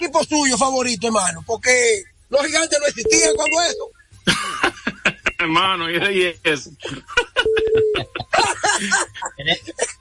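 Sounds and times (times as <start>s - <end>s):
lively overlapping talk: 0.0s - 9.9s
speech: 0.1s - 4.7s, 5.4s - 9.9s
telephone tone signalling an incoming call on a radio call-in line: 3.0s - 3.9s, 7.4s - 8.0s
laughter: 4.3s - 6.2s, 6.8s - 9.9s.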